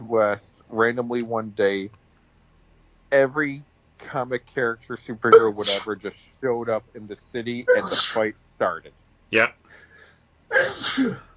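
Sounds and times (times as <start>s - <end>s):
speech: 0.1s - 2.0s, 3.1s - 9.9s, 10.5s - 11.3s
sneeze: 5.4s - 5.9s, 7.7s - 8.2s, 10.5s - 11.3s.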